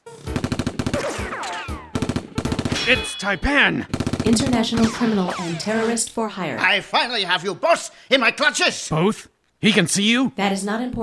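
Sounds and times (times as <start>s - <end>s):
gunfire bursts: 0.2s - 6.0s
speech: 2.9s - 11.0s.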